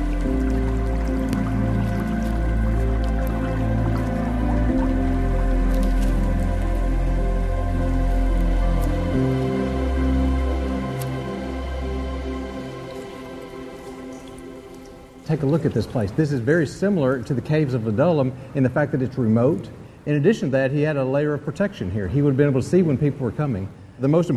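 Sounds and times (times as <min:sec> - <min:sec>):
small stream gurgling over a little waterfall in the Judean wilderness: 0:00.0 - 0:16.4
sustained tonal drone: 0:00.0 - 0:17.0
speech: 0:15.3 - 0:24.3.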